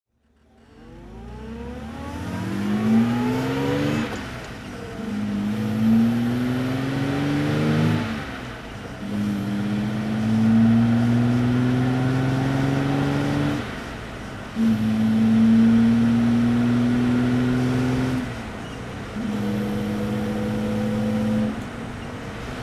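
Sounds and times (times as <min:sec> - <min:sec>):
Healey 3000 Mk3 Ph1 driving: 0:00.1 - 0:22.6.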